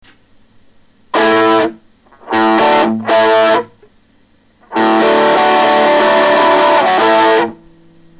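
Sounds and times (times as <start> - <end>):
overdrive distortion: 1.1 - 3.9, 4.5 - 8.1.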